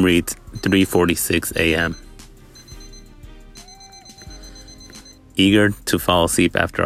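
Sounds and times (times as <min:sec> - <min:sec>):
speech: 0:00.0 - 0:02.0, 0:05.4 - 0:06.8
small alarm clock on a bedroom nightstand beeping: 0:00.0 - 0:05.4.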